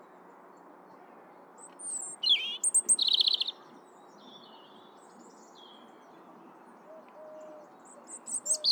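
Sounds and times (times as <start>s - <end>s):
European robin singing: 1.7s - 3.6s, 8.1s - 8.7s.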